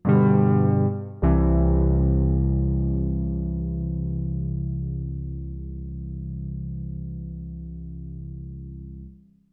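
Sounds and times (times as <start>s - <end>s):
synth chords: 0.0s - 9.1s.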